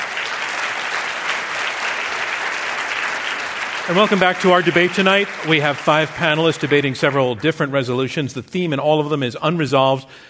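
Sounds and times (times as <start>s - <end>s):
debate audience applause: 0.0s - 7.4s
speech: 3.9s - 10.2s.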